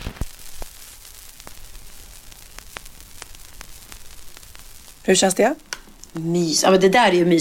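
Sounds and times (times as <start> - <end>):
sharp vinyl pops and clicks: 0.0 - 6.4
soft hiss: 0.0 - 7.3
vinyl record crackle: 0.0 - 7.3
speech: 5.0 - 7.3.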